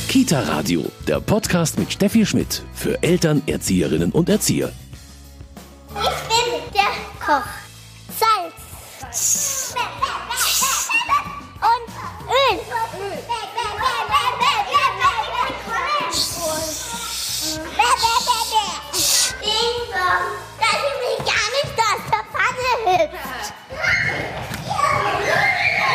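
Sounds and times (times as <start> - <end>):
speech: 0.2 - 4.8, 7.3 - 7.6
children shrieking, shouting and laughing while romping and playing: 5.9 - 7.1, 9.4 - 25.9.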